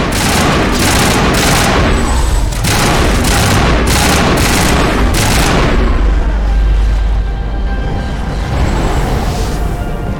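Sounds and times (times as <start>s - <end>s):
gunfire from a shootout in a video game: 0.0s - 6.3s
deep rumbling low boom: 0.0s - 10.1s.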